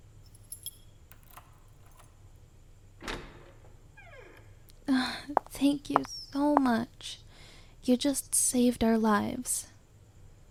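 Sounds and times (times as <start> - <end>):
keys jangling: 0.2 - 2.2
lock clunking: 0.3 - 2.3, 3.0 - 4.6
door swinging open with a low thud and a faint creak: 0.6 - 2.2, 3.0 - 4.7
speech: 5.6 - 7.2, 7.8 - 9.7.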